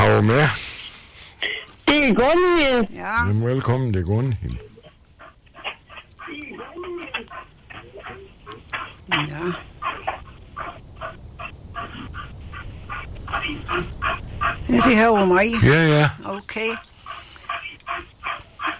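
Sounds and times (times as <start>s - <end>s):
speech: 0.2s - 0.6s, 1.4s - 4.7s, 9.1s - 9.7s, 13.5s - 16.9s
dog panting into a telephone mouthpiece: 4.6s - 18.7s.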